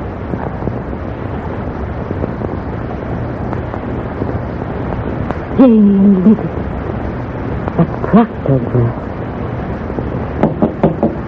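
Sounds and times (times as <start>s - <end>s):
faint rumbling hum: 0.0s - 11.2s
speech: 5.6s - 6.7s, 8.1s - 9.2s
knocking on a door: 10.4s - 11.2s.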